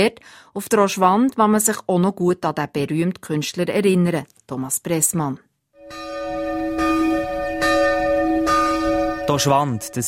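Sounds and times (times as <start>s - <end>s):
speech: 0.0s - 6.0s, 9.3s - 10.0s
schoolhouse bell tower bell ringing at the Oschwand in the Oberaargau: 5.8s - 10.0s.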